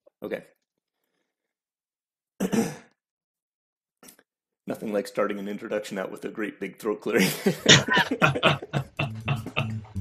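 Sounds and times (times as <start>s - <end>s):
speech: 0.2s - 0.6s, 2.5s - 2.8s, 4.7s - 8.9s
laughter: 7.2s - 9.9s
throat clearing: 7.7s - 9.8s.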